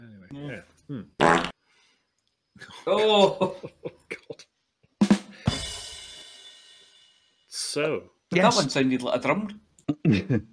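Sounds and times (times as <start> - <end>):
speech: 0.5 - 1.2, 2.9 - 3.7, 7.8 - 10.5
fart noises: 1.1 - 1.6
laughter: 2.6 - 4.4, 9.9 - 10.5.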